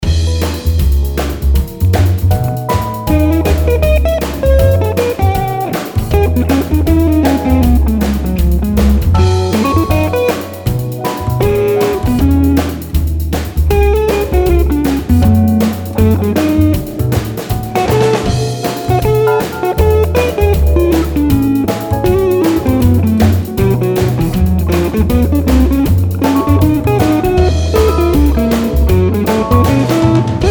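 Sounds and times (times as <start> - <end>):
improvised solo mix: 0.0 - 30.4.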